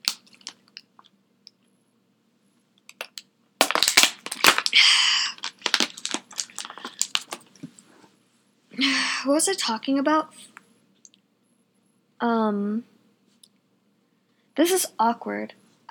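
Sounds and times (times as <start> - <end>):
crinkly bottle handling: 0.0 - 0.9, 2.9 - 7.8
person sipping and gulping water: 4.3 - 7.4
speech: 9.2 - 10.5, 12.2 - 12.9, 14.6 - 15.8.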